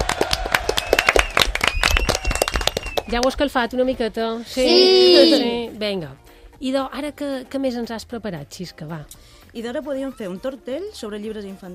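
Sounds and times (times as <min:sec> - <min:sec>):
small group applauding: 0:00.0 - 0:03.4
speech: 0:03.1 - 0:11.7.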